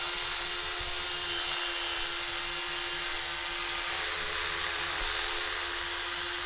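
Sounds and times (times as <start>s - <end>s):
electric toothbrush buzzing: 0.0s - 6.4s.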